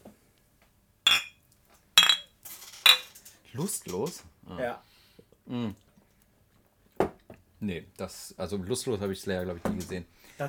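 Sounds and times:
glasses clinking together in a toast: 0:01.1 - 0:01.4, 0:02.0 - 0:03.2
speech: 0:03.6 - 0:04.9, 0:05.5 - 0:05.8, 0:07.6 - 0:10.4.

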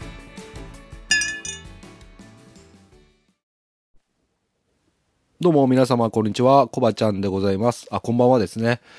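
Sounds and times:
glasses of milk clinking in a toast: 0:01.1 - 0:01.7
speech: 0:05.4 - 0:08.9.

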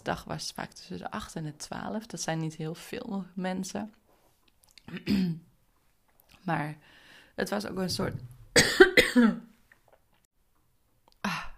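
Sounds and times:
speech: 0:00.0 - 0:04.0, 0:04.9 - 0:05.5, 0:06.4 - 0:09.5
person with a dry throat coughing: 0:04.9 - 0:05.4, 0:08.5 - 0:09.5.

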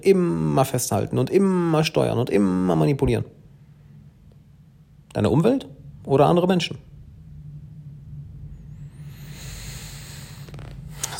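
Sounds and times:
speech: 0:00.0 - 0:03.4, 0:05.2 - 0:06.9
steady low hum: 0:00.0 - 0:11.1
leather belt creaking with a fart-like squeak: 0:10.5 - 0:10.9.

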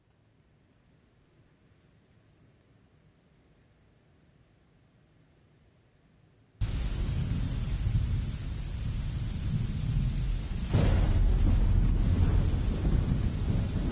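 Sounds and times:
low continuous thunder rumbling: 0:06.6 - 0:13.9.

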